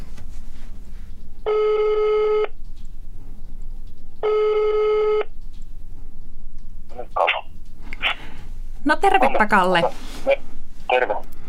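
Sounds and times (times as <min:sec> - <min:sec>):
telephone ringing tone through a phone line: 0:01.5 - 0:02.5, 0:04.2 - 0:05.3
speech: 0:08.9 - 0:11.3.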